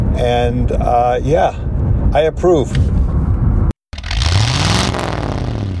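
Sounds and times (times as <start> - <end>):
speech: 0.2 - 3.0
2021 Jaguar F-Type R sports car engine revving: 4.0 - 5.7.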